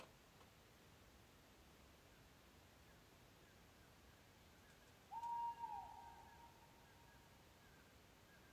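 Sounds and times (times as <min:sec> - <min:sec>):
owl whistled call at Finnskogen in Norway: 0:05.1 - 0:08.5.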